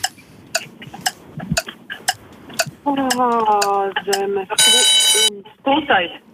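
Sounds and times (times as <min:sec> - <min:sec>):
people talking: 0:02.6 - 0:06.3
loud bright quiz bell ringing: 0:04.6 - 0:05.3.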